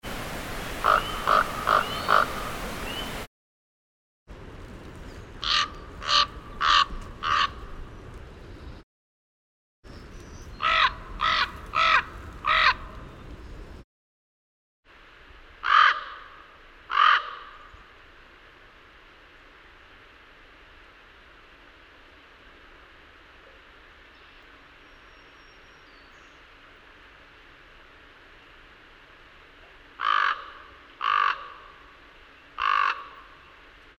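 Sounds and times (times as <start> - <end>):
raven croaking: 0.8 - 2.6, 5.4 - 7.6, 10.6 - 12.9, 15.6 - 17.7, 30.0 - 32.0, 32.6 - 33.4.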